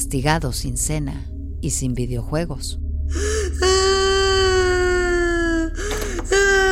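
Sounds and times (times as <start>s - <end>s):
speech: 0.1s - 3.3s
boy crying in a house: 3.2s - 6.7s.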